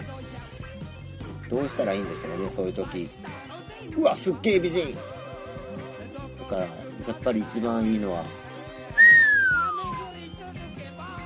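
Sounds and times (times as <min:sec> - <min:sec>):
speech: 0:01.5 - 0:05.2, 0:06.5 - 0:08.4
person whistling with a downward slide: 0:09.0 - 0:10.2.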